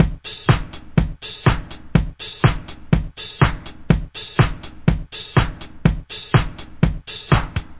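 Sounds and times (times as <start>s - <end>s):
disco punk music: 0.0s - 7.7s
drum loops and breaks: 0.0s - 7.7s.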